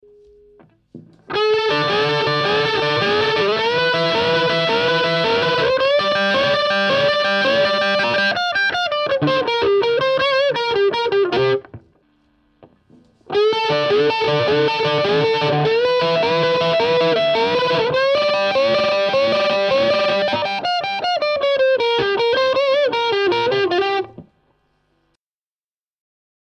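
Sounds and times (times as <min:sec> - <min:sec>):
electric guitar with standard gain on neck pickup: 0:00.0 - 0:24.4.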